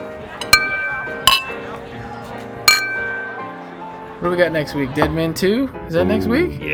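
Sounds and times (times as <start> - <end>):
drinking glasses clinking in a toast: 0.0 - 1.8, 2.6 - 3.6
speech: 4.2 - 6.7.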